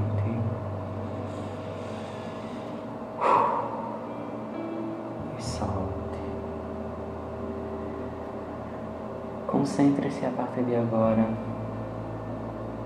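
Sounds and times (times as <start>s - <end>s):
steady low hum: 0.0s - 12.8s
soft exhale: 1.2s - 4.0s
breathy inhale: 1.2s - 4.1s
speech: 9.6s - 11.6s.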